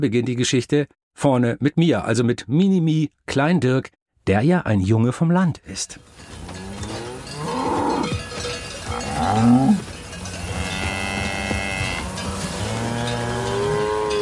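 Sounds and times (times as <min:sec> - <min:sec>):
speech: 0:00.0 - 0:06.6, 0:09.3 - 0:09.9
cows mooing: 0:06.3 - 0:14.1.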